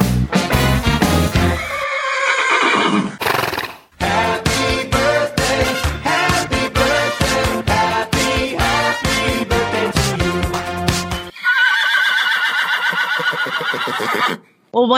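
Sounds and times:
short upbeat music jingle: 0.0 - 1.8, 4.0 - 11.3
horse whinnying: 1.3 - 3.9, 11.3 - 14.5.

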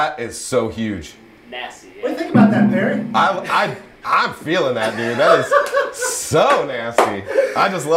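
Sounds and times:
speech: 0.2 - 1.3, 2.3 - 7.9
Rhodes electric piano through a Greer distortion pedal playing sustained chords: 2.3 - 3.7
laughter: 4.8 - 6.4.

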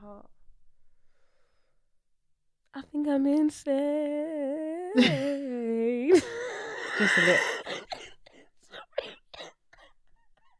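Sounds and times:
speech: 2.8 - 5.5, 7.0 - 7.8
harsh rapid coughing fit: 6.3 - 10.5.

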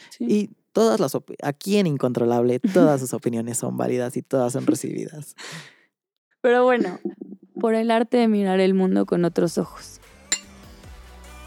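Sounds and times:
speech: 0.2 - 5.8, 6.4 - 10.0
laughter: 2.6 - 3.1, 4.6 - 5.0, 6.8 - 7.2
glasses clinking in a toast: 10.3 - 10.5.

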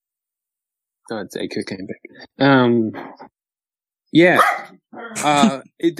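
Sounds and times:
speech: 1.1 - 3.3, 4.1 - 5.9
female dog giving strained hoarse barks: 4.4 - 4.8.

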